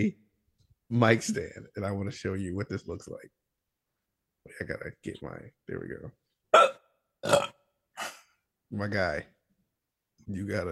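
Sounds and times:
speech: 0:00.0 - 0:00.2, 0:00.9 - 0:03.4, 0:04.4 - 0:07.6, 0:08.7 - 0:09.4, 0:10.3 - 0:10.7
throaty hiccups: 0:06.5 - 0:08.3.

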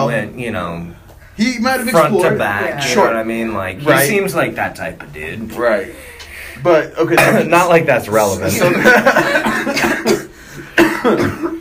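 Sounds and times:
speech: 0:00.1 - 0:09.9
rough raspy breathing and throat noise: 0:05.9 - 0:06.7, 0:10.3 - 0:10.8
laughter: 0:08.4 - 0:10.4
harsh coughs: 0:09.2 - 0:11.6.

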